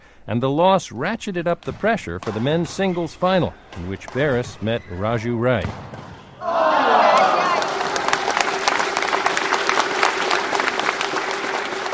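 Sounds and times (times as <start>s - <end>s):
speech: 0.2s - 6.0s
crowd of about 400 applauding and cheering at a badminton men's singles final: 6.4s - 11.9s
steady dense clapping of badminton crowd: 7.0s - 11.9s.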